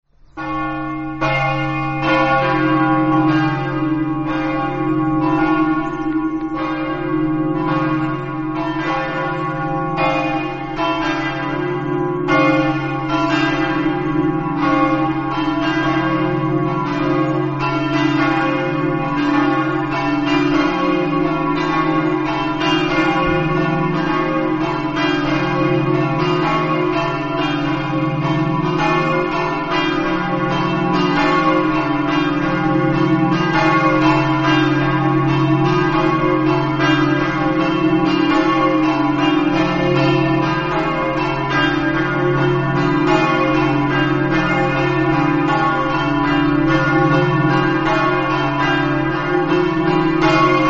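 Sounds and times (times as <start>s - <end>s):
bells ringing in Meduno: 0.3s - 50.6s.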